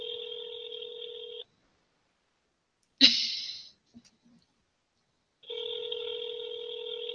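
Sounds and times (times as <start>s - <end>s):
telephone ringback tones through a call line: 0.0s - 1.4s, 5.5s - 7.1s.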